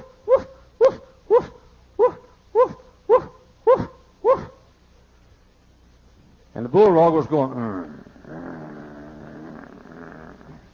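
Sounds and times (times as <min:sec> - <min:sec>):
voice imitating a Chihuahua barking: 0:00.0 - 0:04.6
speech: 0:06.6 - 0:08.0.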